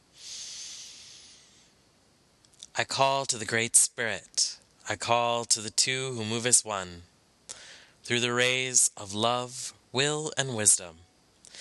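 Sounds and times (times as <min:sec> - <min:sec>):
single deep breath before a spoken invocation at a spiritual gathering: 0:00.1 - 0:01.8, 0:07.5 - 0:08.0
speech: 0:02.8 - 0:07.1, 0:08.0 - 0:11.1.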